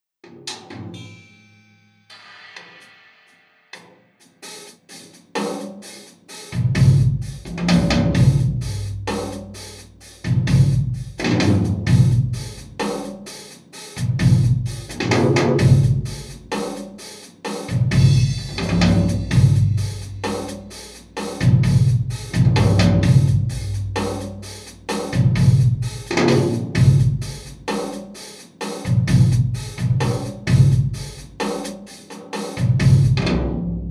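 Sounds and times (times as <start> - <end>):
drums playing: 4.2 - 33.6.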